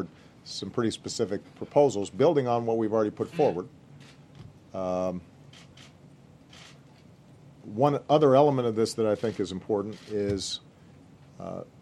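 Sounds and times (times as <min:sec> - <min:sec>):
speech: 0:00.0 - 0:03.8, 0:04.7 - 0:05.3, 0:07.7 - 0:10.7, 0:11.4 - 0:11.8
person sneezing: 0:03.3 - 0:03.6.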